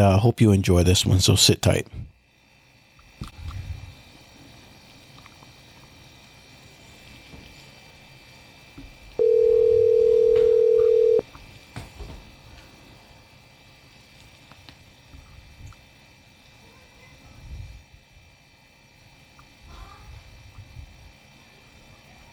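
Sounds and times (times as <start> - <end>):
speech: 0.0 - 2.1
ringback tone from an outgoing phone call: 9.2 - 11.2.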